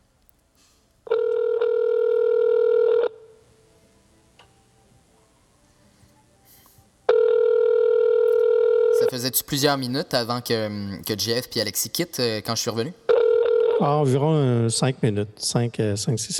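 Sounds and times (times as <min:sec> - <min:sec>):
telephone ringback tone on an outgoing call: 0:01.1 - 0:03.4, 0:07.1 - 0:09.2, 0:13.1 - 0:13.9
speech: 0:09.2 - 0:13.0, 0:13.8 - 0:16.3.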